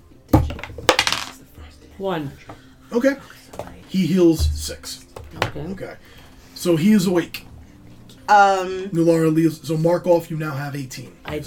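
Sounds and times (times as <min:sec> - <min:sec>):
small six-sided die rolled on a hard tabletop: 0:00.5 - 0:01.4
speech: 0:02.0 - 0:07.5, 0:08.3 - 0:11.4.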